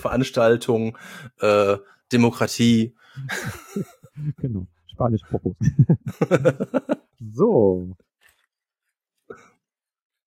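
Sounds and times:
speech: 0.0 - 8.1
laughter: 3.2 - 4.6, 5.3 - 7.1
plastic rustling and crinkling: 8.1 - 9.2.

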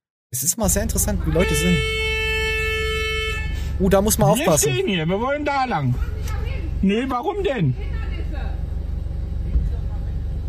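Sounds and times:
speech: 0.3 - 2.1, 3.8 - 6.2, 6.8 - 8.0
low rumble of engine and city traffic noise: 0.4 - 10.4
car horn honking in city traffic: 0.7 - 7.1.

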